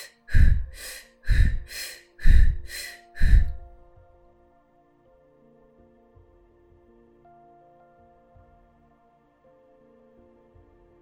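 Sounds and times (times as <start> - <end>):
rapid forceful breathing during an accelerated breathing exercise: 0.0 - 3.8.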